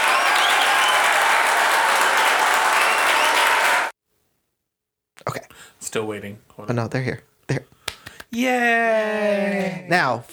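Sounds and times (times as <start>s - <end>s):
crowd applauding: 0.0s - 3.9s
speech: 5.9s - 7.7s, 8.4s - 10.3s.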